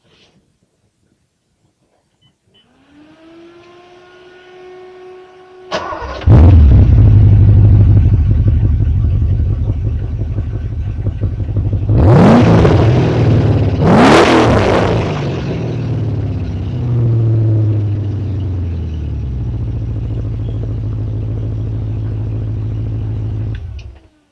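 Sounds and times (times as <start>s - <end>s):
928 car exhaust: 5.8s - 24.0s.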